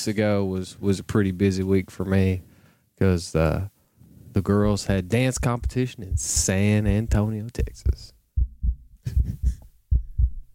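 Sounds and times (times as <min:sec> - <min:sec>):
speech: 0:00.0 - 0:03.7, 0:04.4 - 0:08.2
heartbeat thumping in low lub-dub pulses: 0:04.4 - 0:10.5.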